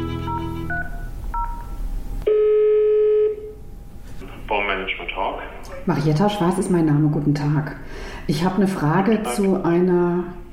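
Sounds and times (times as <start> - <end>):
steady ringing tone on the telephone line: 0.1 - 1.6, 2.3 - 3.5
speech: 5.8 - 10.4.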